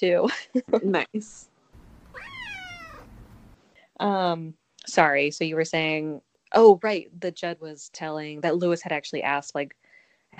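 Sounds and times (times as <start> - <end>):
speech: 0.0 - 1.5, 4.0 - 10.3
small cat meowing: 1.8 - 3.6
low rumble: 1.8 - 3.7.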